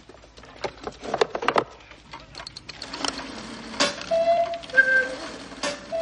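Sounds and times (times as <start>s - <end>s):
faint noise: 0.0s - 6.0s
cuckoo clock hands clicking and ratcheting as turned by hand: 2.3s - 6.0s
hollow cuckoo tones from mechanical bird of a cuckoo clock: 3.8s - 6.0s.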